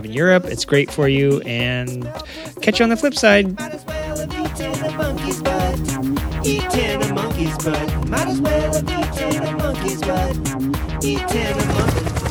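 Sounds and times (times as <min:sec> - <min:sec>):
speech: 0:00.0 - 0:12.2
helicopter rotor thumping over engine whine: 0:01.5 - 0:06.7.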